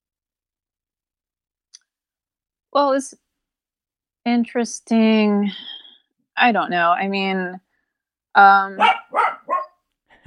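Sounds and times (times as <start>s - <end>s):
speech: 2.7s - 3.2s, 4.2s - 5.8s, 6.4s - 7.6s, 8.4s - 9.3s
dog barking: 8.8s - 9.8s.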